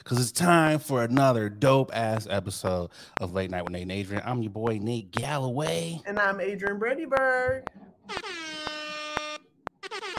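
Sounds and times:
speech: 0.0s - 8.4s
air horn sound effect blast: 8.1s - 10.1s.

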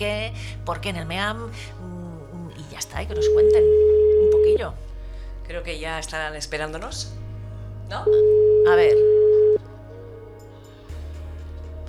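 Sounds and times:
speech: 0.0s - 2.0s, 2.8s - 4.9s, 5.5s - 7.2s, 7.9s - 9.2s
low continuous telephone line hum: 0.0s - 11.8s
telephone ringing tone beep: 3.2s - 4.6s, 8.1s - 9.6s.

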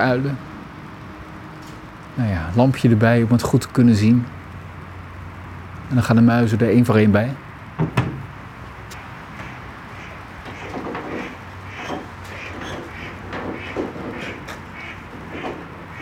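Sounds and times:
speech: 0.0s - 0.5s, 2.2s - 4.4s, 5.9s - 8.0s
panicked ducks quacking while flying past: 9.0s - 16.0s.

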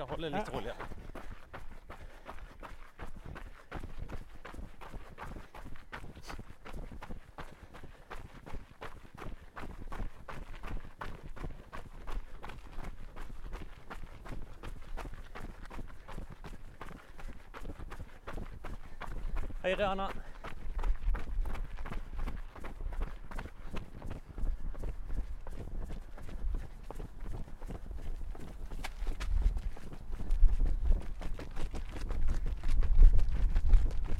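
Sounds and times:
speech: 0.0s - 1.1s, 19.7s - 20.2s
running footsteps at a brisk pace: 0.0s - 34.1s.

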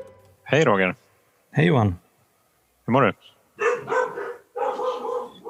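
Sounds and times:
speech: 0.5s - 2.0s, 2.9s - 4.0s
dogs barking: 3.6s - 5.4s.

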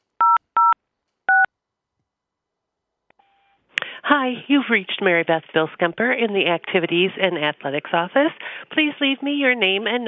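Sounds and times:
touch-tone keypad dialing on an automated school phone menu: 0.2s - 1.5s
speech: 4.1s - 10.0s.

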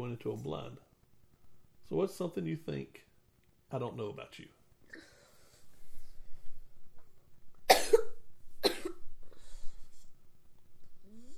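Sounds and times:
speech: 0.1s - 0.9s, 1.9s - 3.1s, 3.7s - 5.1s
person coughing: 7.7s - 9.1s.

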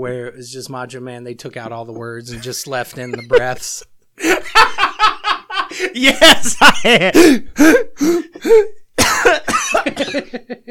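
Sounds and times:
speech: 0.0s - 4.9s, 5.8s - 10.6s
laughter: 2.3s - 10.6s
man coughing raspily: 7.0s - 10.5s.

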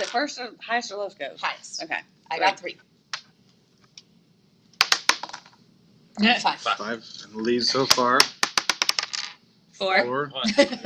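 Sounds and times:
speech: 0.0s - 2.9s, 6.2s - 8.4s, 9.8s - 10.8s
die rolled on a table during a board game: 4.8s - 5.6s, 7.9s - 9.4s.

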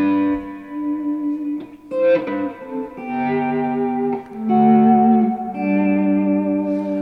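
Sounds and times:
electric guitar chord volume swells with volume pedal in heavy reverb: 0.0s - 7.0s.

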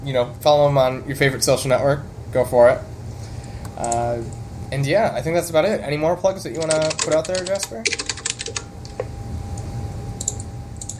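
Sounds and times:
speech: 0.0s - 2.9s, 3.8s - 8.1s
low hum: 0.0s - 10.9s
typing on a computer keyboard: 6.6s - 8.6s, 10.2s - 10.9s.

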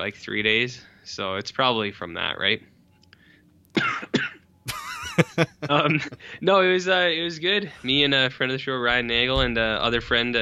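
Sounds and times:
speech: 0.0s - 2.7s, 5.2s - 10.4s
person coughing harshly: 3.8s - 4.4s
laughter: 4.7s - 6.3s.

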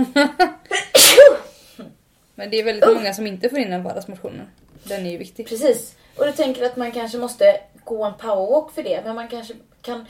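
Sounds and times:
speech: 0.0s - 1.4s, 2.4s - 10.0s
person sneezing after sharp inhaled breaths: 0.7s - 1.7s.

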